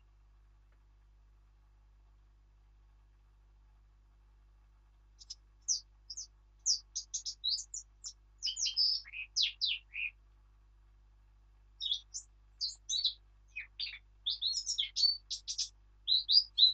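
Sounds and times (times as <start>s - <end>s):
Eurasian blackcap Sylvia atricapilla singing: 5.2s - 10.2s, 11.8s - 16.7s.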